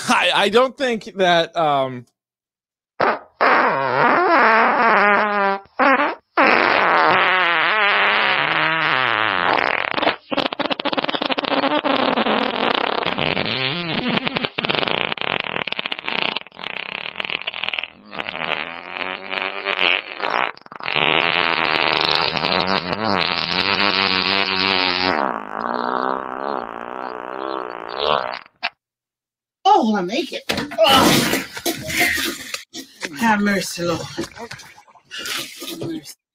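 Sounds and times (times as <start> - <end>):
speech: 0.1 - 2.1, 3.0 - 3.3, 33.6 - 34.6
long sputtering fart sound effect: 3.0 - 28.8, 30.9 - 32.2
laughter: 31.4 - 33.2, 34.1 - 36.0.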